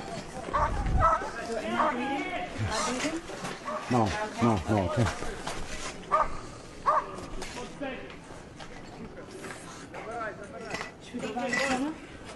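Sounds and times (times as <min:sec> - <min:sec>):
voices: 0:00.0 - 0:12.3
dog barking: 0:00.5 - 0:02.0, 0:06.1 - 0:07.1
speech: 0:01.8 - 0:05.5.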